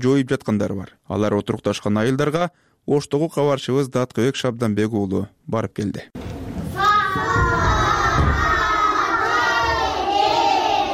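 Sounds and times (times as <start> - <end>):
speech: 0.0 - 6.3
schoolchildren shouting together in a first-grade classroom at a village secondary school: 6.7 - 10.9.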